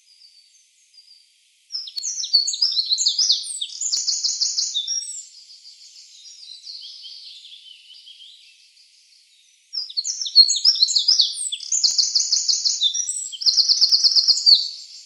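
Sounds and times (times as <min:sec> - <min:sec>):
Eurasian wren singing trills and twittering notes: 0:01.7 - 0:08.6, 0:09.4 - 0:15.0.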